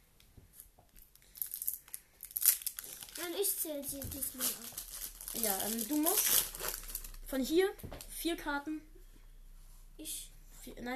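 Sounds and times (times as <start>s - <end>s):
foil card pack wrapper crinkling and tearing open: 1.3s - 3.5s, 4.2s - 7.2s
speech: 3.4s - 6.7s, 7.3s - 8.9s, 10.0s - 10.9s.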